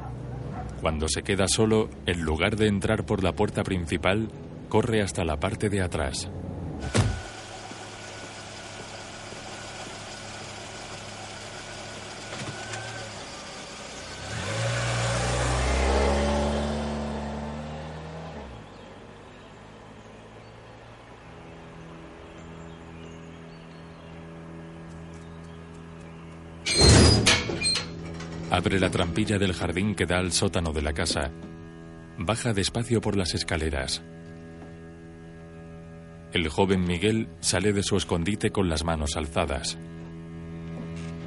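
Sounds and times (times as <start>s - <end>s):
speech: 0.8s - 7.2s, 28.6s - 31.6s, 32.2s - 34.2s, 36.4s - 40.0s
car engine humming while driving: 1.6s - 41.2s
car door as a passenger gets out: 6.8s - 7.4s.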